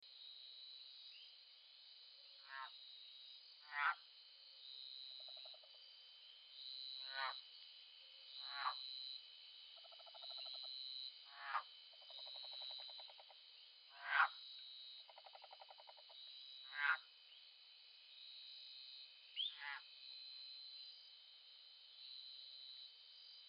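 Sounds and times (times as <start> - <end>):
Agalychnis dacnicolor tree frog calling: 2.4 - 2.8, 3.6 - 4.0, 5.1 - 5.8, 6.9 - 7.4, 8.3 - 8.9, 9.8 - 14.4, 15.0 - 17.4, 19.4 - 19.9.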